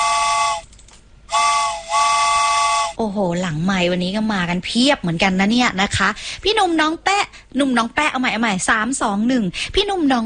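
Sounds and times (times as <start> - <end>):
steam train whistle blasts with breathy hiss: 0.0 - 0.7, 1.3 - 3.0
speech: 3.5 - 10.2.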